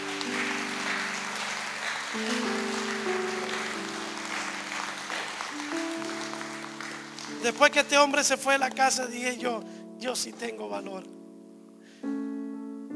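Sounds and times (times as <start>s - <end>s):
crowd clapping: 0.0s - 8.4s
keyboard or organ chords: 0.0s - 12.9s
speech: 7.4s - 11.2s.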